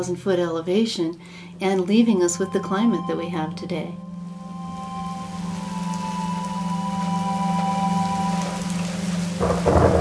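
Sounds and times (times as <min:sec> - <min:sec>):
speech: 0:00.0 - 0:04.1
steady rain in a summer thunderstorm: 0:04.2 - 0:10.0
thunder crack in a summer thunderstorm: 0:09.4 - 0:10.0.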